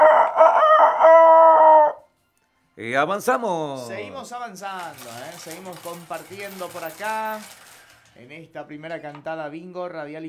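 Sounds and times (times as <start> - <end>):
rooster crowing: 0.0 - 2.1
speech: 2.8 - 7.6, 8.2 - 10.2.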